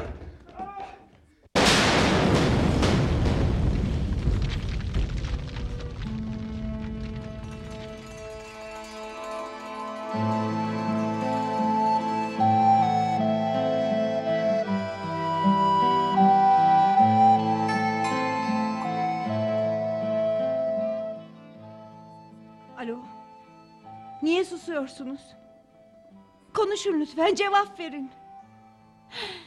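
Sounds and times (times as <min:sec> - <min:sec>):
explosion in a mine, radio drama sound effect: 0:01.6 - 0:08.4
sustained music: 0:05.8 - 0:26.5
speech: 0:24.8 - 0:25.4, 0:26.7 - 0:28.2.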